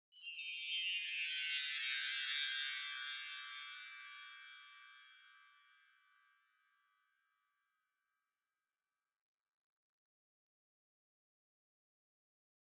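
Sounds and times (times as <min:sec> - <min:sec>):
wind chimes slowed down with reverb: 0:00.1 - 0:05.9.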